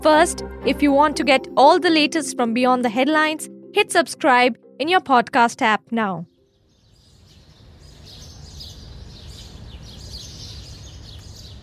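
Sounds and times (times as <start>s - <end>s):
speech: 0.0s - 6.3s
birds chirping outdoors at a world expo site in Dubai: 6.3s - 11.6s.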